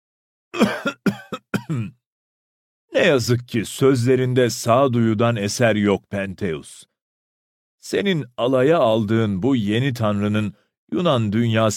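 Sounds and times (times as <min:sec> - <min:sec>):
seer coughing in a palace hall: 0:00.6 - 0:02.0
speech: 0:01.7 - 0:02.0, 0:02.9 - 0:06.9, 0:07.8 - 0:11.7.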